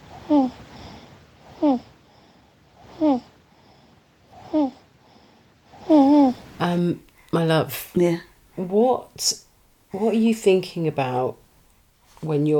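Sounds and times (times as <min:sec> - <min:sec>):
baby snoring in a voice-note recording: 0:00.0 - 0:06.6
quiet breathing hiss: 0:00.0 - 0:12.5
speech: 0:00.3 - 0:00.6, 0:06.8 - 0:11.4, 0:12.2 - 0:12.5.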